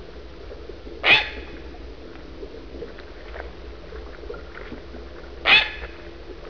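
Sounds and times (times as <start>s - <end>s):
great blue heron calling: 1.0s - 1.5s, 5.4s - 5.9s.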